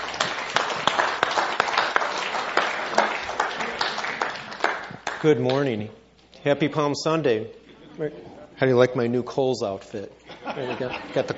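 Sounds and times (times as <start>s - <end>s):
audience applauding: 0.0s - 5.6s
speech: 5.2s - 11.3s
laughter: 10.2s - 11.3s.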